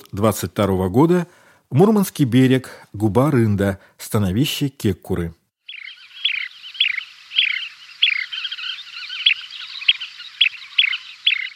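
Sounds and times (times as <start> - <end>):
speech: 0.1 - 5.4
constant high twittering chorus: 5.6 - 11.5
small bird a little larger than a sparrow chirping: 5.6 - 11.5.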